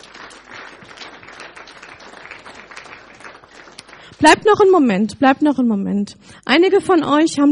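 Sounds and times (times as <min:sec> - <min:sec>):
audience applauding: 0:00.0 - 0:04.6
speech: 0:04.2 - 0:07.5.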